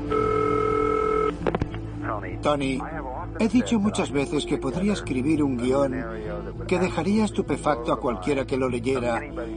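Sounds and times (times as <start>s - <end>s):
steady electronic telephone tone: 0.1s - 1.5s
speech: 2.2s - 9.5s.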